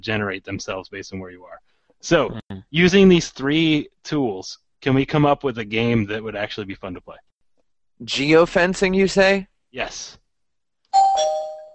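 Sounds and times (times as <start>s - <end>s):
speech: 0.0s - 7.3s, 8.0s - 10.2s
two-note doorbell chime ding-dong: 11.0s - 11.7s.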